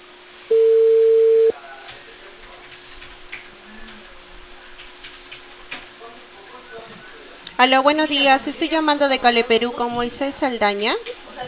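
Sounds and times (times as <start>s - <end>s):
loud steady telephone tone: 0.5s - 1.5s
speech: 7.6s - 11.4s.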